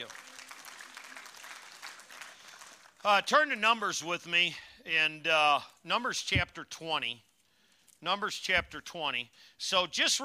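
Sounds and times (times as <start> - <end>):
congregation applauding in church: 0.0 - 3.3
speech: 3.0 - 7.3, 8.0 - 10.2.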